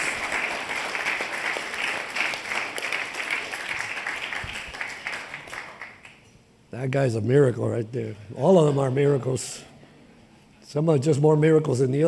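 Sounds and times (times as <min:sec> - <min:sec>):
audience applause: 0:00.0 - 0:06.2
speech: 0:06.8 - 0:09.7, 0:10.7 - 0:12.0.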